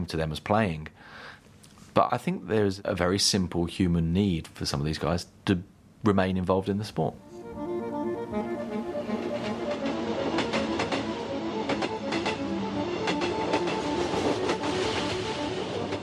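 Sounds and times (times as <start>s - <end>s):
speech: 0.0s - 1.3s, 2.0s - 7.7s
train rolling along the rails: 8.0s - 16.0s
train wheels clacking over track joints: 9.1s - 16.0s.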